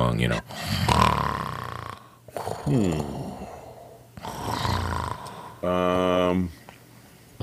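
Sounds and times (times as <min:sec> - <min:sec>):
speech: 0:00.2 - 0:01.0, 0:02.6 - 0:03.2, 0:05.6 - 0:06.6
voice imitating deep languid snoring: 0:00.2 - 0:05.7.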